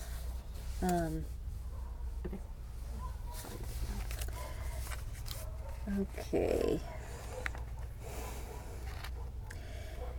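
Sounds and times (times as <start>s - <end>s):
low steady hum: 0.0s - 10.1s
speech: 0.8s - 1.4s, 2.2s - 2.5s, 5.8s - 7.0s
soft crinkly paper rustling: 3.3s - 5.8s.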